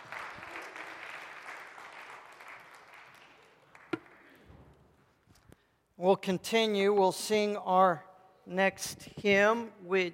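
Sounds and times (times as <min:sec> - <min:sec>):
room full of people applauding: 0:00.0 - 0:04.4
speech: 0:06.0 - 0:10.1.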